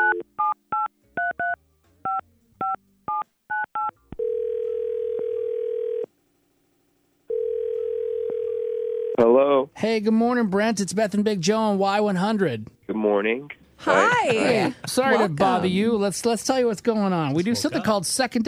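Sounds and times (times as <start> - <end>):
telephone ringback tone: 0.0 - 6.1, 7.3 - 9.2
speech: 9.4 - 18.4
laughter: 13.8 - 15.8, 17.3 - 18.1.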